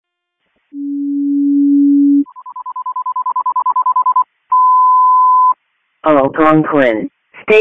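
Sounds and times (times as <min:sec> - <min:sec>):
fire dispatch general alarm tones: 0:00.8 - 0:05.6
speech: 0:06.0 - 0:07.6.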